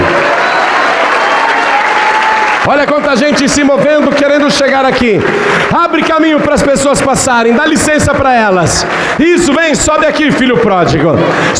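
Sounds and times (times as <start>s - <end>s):
large church audience applauding: 0.0s - 7.7s
speech: 2.7s - 11.5s.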